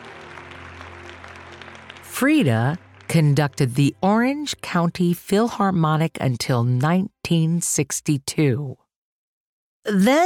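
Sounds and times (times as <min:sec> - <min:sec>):
audience clapping in a standing ovation after an orchestra's concert: 0:00.0 - 0:03.9
speech: 0:02.2 - 0:08.8, 0:09.8 - 0:10.2.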